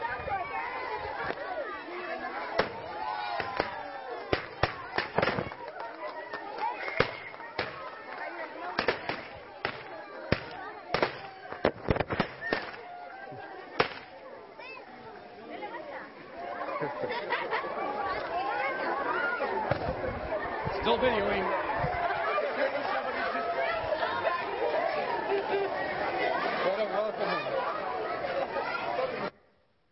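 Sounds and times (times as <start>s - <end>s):
crowd chatter: 0.0s - 29.9s
confetti launchers popping and shooting confetti: 3.4s - 5.7s, 6.9s - 8.0s, 8.7s - 12.9s, 13.8s - 14.2s
laughter: 16.4s - 19.6s, 21.6s - 29.2s.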